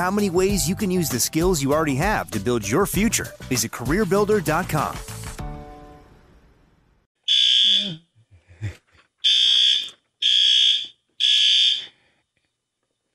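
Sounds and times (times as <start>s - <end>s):
speech: 0.0s - 5.2s
fire alarm blaring indoors while a stove is on for cooking: 7.2s - 7.9s, 9.2s - 11.9s.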